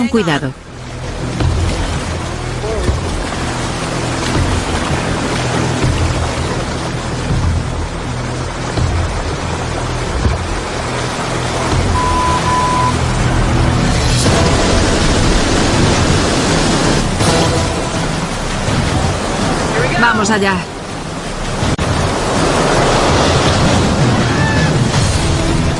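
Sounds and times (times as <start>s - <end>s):
rushing water from dangerous river rapids and waterfalls: 0.0s - 25.7s
speech: 0.1s - 0.6s, 20.2s - 20.8s.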